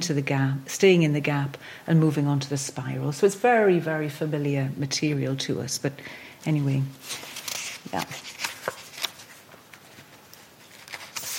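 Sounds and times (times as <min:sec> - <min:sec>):
speech: 0:00.0 - 0:08.3
paper notes rustling as a speaker arranges them: 0:07.0 - 0:11.3.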